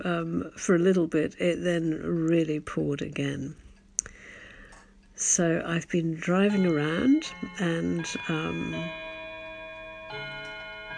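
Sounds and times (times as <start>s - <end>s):
speech: 0.0s - 3.6s, 5.2s - 9.0s
faint clock ticking: 0.0s - 10.9s
clock chiming the hour of seven: 6.2s - 10.9s.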